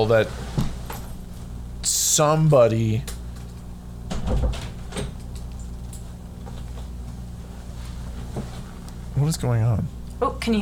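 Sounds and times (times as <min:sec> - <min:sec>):
speech: 0:00.0 - 0:00.4, 0:01.8 - 0:03.2, 0:09.2 - 0:10.5
faint steady hum: 0:00.0 - 0:10.5
door being opened: 0:04.1 - 0:05.3.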